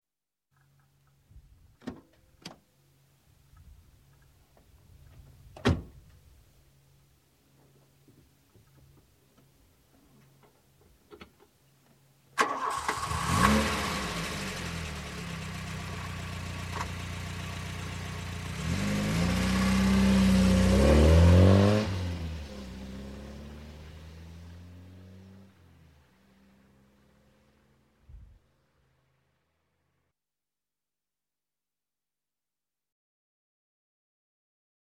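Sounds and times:
Golf GTI driving away: 12.4s - 29.5s.

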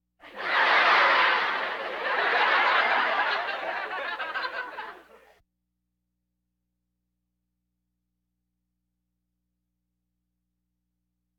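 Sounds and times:
laugh track: 0.2s - 5.4s.

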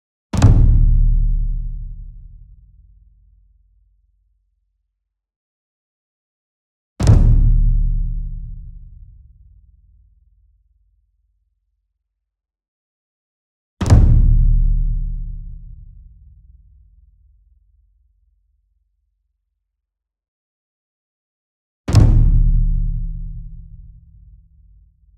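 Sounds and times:
ensemble taiko drum flam: 0.4s - 2.4s, 7.0s - 9.2s, 13.8s - 16.6s, 21.9s - 24.3s.

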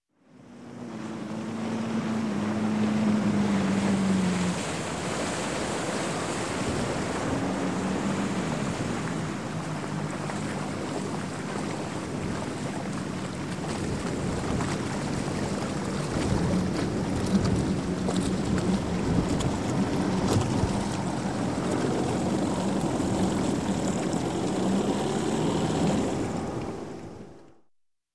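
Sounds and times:
115 hp boat outboard motor approaching dock and shutting off: 0.1s - 27.7s.

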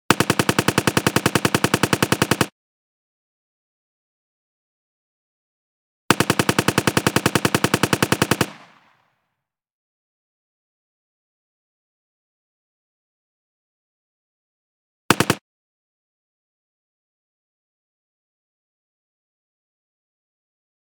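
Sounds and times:
simulated M-14 rifle burst fire: 0.1s - 2.5s, 6.1s - 9.0s, 15.1s - 15.4s.

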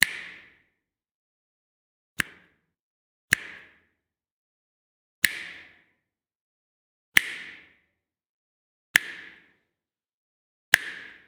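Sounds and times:
human finger snaps: 2.2s - 2.6s, 3.3s - 3.8s, 5.2s - 5.8s, 7.2s - 7.7s, 9.0s - 9.4s, 10.7s - 11.2s.

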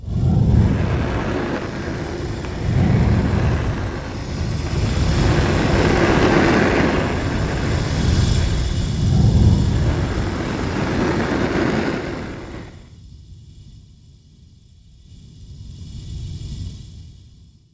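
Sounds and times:
gas: 0.0s - 12.9s.

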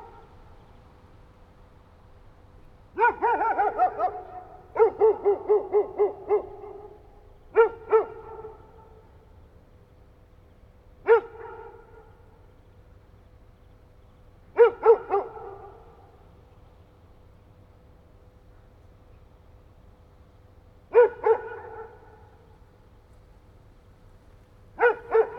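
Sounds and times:
dog barking: 3.0s - 9.0s, 11.1s - 12.2s, 14.6s - 16.0s, 20.9s - 22.5s, 24.8s - 25.3s.

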